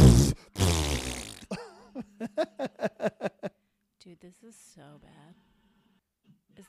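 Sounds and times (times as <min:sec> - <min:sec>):
voice imitating a wet sputtering fart: 0:00.0 - 0:01.6
laughter: 0:01.5 - 0:03.5
speech: 0:04.1 - 0:05.6, 0:06.3 - 0:06.6.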